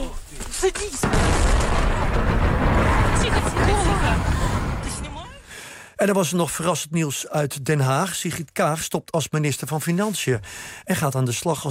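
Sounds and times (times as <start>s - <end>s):
speech: 0.6s - 1.5s, 6.0s - 11.7s
huge explosion of a large navy ship filmed on a mobile phone: 1.0s - 5.5s.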